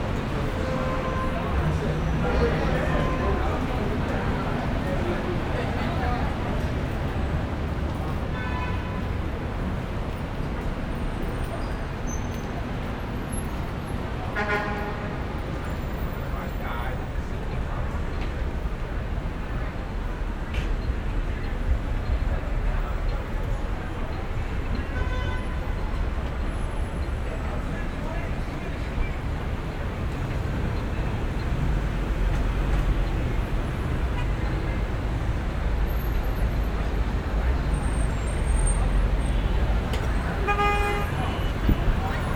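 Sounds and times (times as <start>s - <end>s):
urban daytime street traffic: 0.0s - 42.3s
car horns in urban traffic: 14.4s - 15.2s, 24.9s - 25.8s, 40.2s - 42.0s.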